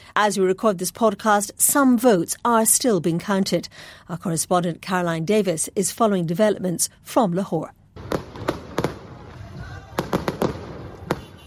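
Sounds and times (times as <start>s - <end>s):
speech: 0.2s - 7.8s
fireworks bangs at an election rally in Lahore Pakistan: 8.0s - 11.4s.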